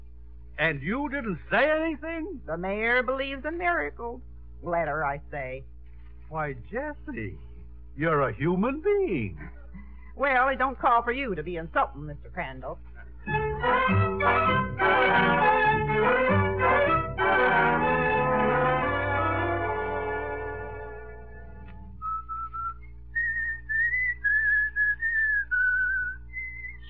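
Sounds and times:
speech: 0.6s - 5.7s, 6.3s - 9.6s, 10.2s - 15.4s
instrumental music: 13.2s - 22.0s
person whistling a tune: 22.0s - 26.8s.

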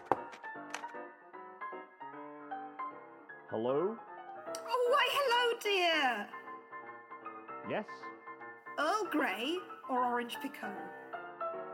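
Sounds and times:
sharp knocks on a door: 0.0s - 0.4s
tray set down with a soft thunk: 0.0s - 0.9s
speech: 3.5s - 6.4s, 7.7s - 8.2s, 8.8s - 11.0s.

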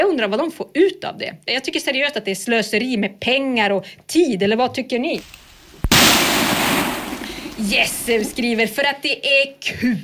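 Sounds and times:
speech: 0.1s - 6.2s, 7.6s - 10.0s
outdoor firecracker bang with hissing rumbling tail: 5.2s - 8.6s.

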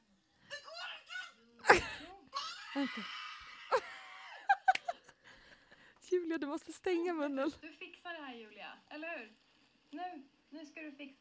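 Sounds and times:
woman moaning and crying out while pushing in labor: 1.6s - 4.1s
speech: 2.8s - 3.2s, 6.3s - 11.1s.

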